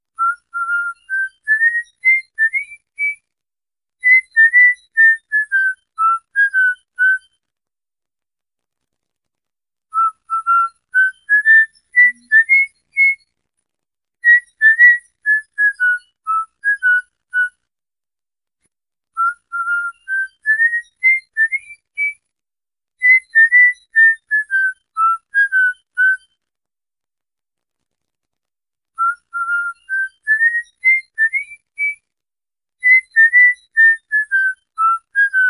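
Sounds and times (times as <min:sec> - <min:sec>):
whistling for a cockatiel: 0:00.2 - 0:03.3, 0:04.0 - 0:07.4, 0:09.9 - 0:13.3, 0:14.2 - 0:17.6, 0:19.2 - 0:22.3, 0:23.0 - 0:26.4, 0:29.0 - 0:32.1, 0:32.8 - 0:35.4.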